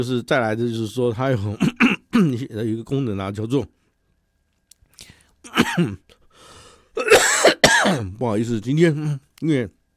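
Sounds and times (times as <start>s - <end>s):
speech: 0.0s - 3.8s, 5.4s - 6.1s, 7.0s - 9.8s
person with a cold coughing hoarsely: 1.6s - 2.3s, 5.5s - 6.0s, 7.0s - 8.1s
faint breathy sounds: 4.9s - 5.4s, 6.2s - 7.0s.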